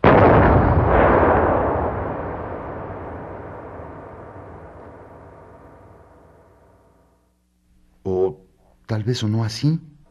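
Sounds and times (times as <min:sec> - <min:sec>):
huge cannon shot explosion: 0:00.0 - 0:07.0
speech: 0:08.9 - 0:09.9.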